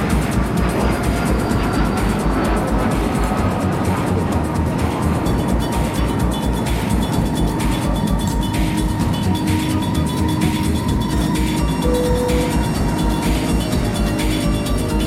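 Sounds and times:
aircraft taking off for a zero-gravity parabolic flight: 0:00.0 - 0:15.0.

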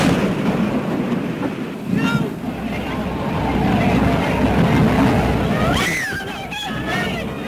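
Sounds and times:
Hindenburg airship exploding and burning: 0:00.0 - 0:07.4
people aboard the airship shouting and crying: 0:01.9 - 0:07.4.

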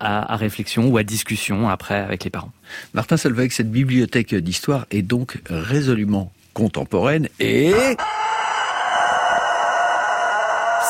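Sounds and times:
speech: 0:00.0 - 0:08.2
sick rooster crowing: 0:08.0 - 0:10.8.

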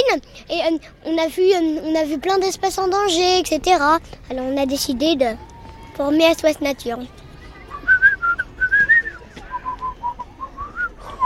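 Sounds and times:
speech: 0:00.1 - 0:07.2
person whistling a lively tune: 0:07.6 - 0:11.2.

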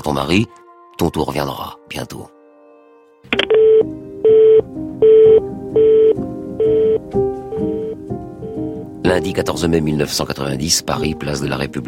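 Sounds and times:
speech: 0:00.0 - 0:02.4, 0:03.2 - 0:03.9, 0:09.1 - 0:11.8
telephone electronic tone beeps: 0:03.4 - 0:07.0.

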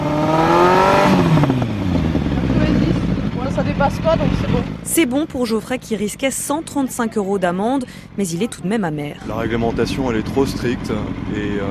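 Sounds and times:
engine revving during exhaust noise test: 0:00.0 - 0:05.9, 0:09.2 - 0:11.6
speech: 0:05.0 - 0:11.6.

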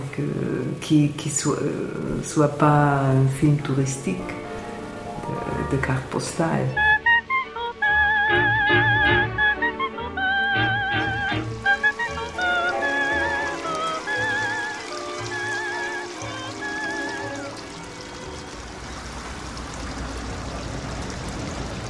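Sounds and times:
small river flowing through the city of Vienna: 0:00.0 - 0:07.0, 0:09.2 - 0:21.8
speech: 0:00.2 - 0:04.4, 0:05.3 - 0:06.9
music with wavering sustained tones: 0:03.1 - 0:19.1.

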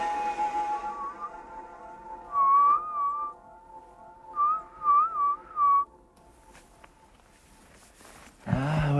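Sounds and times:
woman whistling to call wolves in a primeval forest: 0:00.0 - 0:01.6, 0:02.3 - 0:03.4, 0:04.4 - 0:05.9
rustling: 0:06.3 - 0:08.5.

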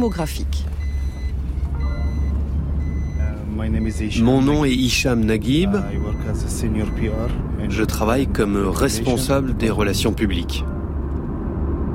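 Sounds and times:
speech: 0:00.0 - 0:00.8, 0:03.6 - 0:10.7
car seatbelt warning chime beeping inside the vehicle: 0:00.0 - 0:08.0
steady low car engine rumble: 0:00.0 - 0:11.9.

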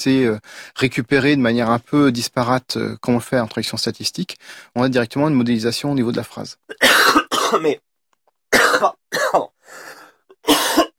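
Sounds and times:
speech: 0:00.0 - 0:07.9, 0:08.8 - 0:09.9
person coughing deliberately: 0:06.7 - 0:07.8, 0:08.5 - 0:09.6, 0:10.3 - 0:10.9.

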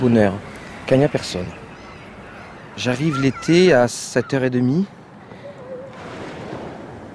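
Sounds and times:
speech: 0:00.0 - 0:01.6, 0:02.8 - 0:05.0
gentle sea waves lapping: 0:05.3 - 0:07.1.

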